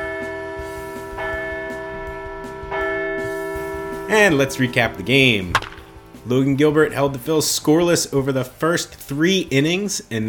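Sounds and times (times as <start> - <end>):
bell ringing: 0.0 - 5.4
speech: 4.1 - 10.2.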